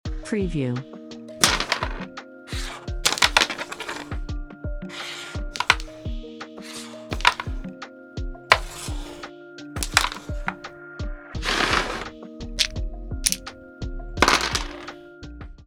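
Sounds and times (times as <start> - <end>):
music: 0.0 - 15.6
carrom board sounds: 1.4 - 4.2, 4.9 - 7.7, 8.5 - 10.7, 11.4 - 12.7, 13.3 - 13.6, 14.2 - 15.0.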